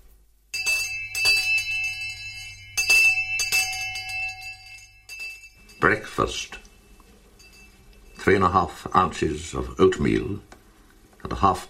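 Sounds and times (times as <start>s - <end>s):
hand bell ringing: 0.5s - 8.7s
speech: 5.8s - 6.6s, 8.2s - 10.5s, 11.2s - 11.6s.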